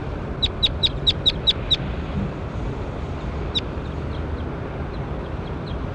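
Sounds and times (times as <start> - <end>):
constant low rumble of outdoor noise: 0.0 - 5.9
bird chirping: 0.4 - 1.9, 3.5 - 5.9.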